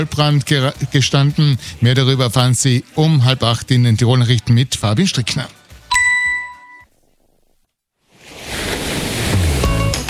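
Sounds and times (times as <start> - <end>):
speech: 0.0 - 5.6
bright chime: 5.9 - 6.8
Mediterranean Sea waves washing in on a mild May evening: 8.1 - 9.9.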